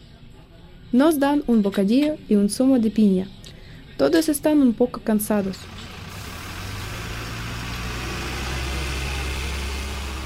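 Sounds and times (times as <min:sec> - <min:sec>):
speech: 0:00.9 - 0:03.4, 0:04.0 - 0:05.8
large vehicle engine idling: 0:05.2 - 0:10.2.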